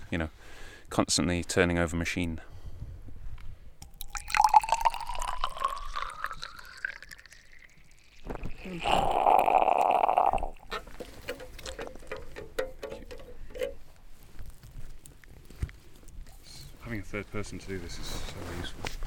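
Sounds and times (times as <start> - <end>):
speech: 0.1 - 2.5, 17.4 - 19.0
soil water samples pouring into a container: 3.8 - 10.8
syringe squirting water: 3.8 - 11.0.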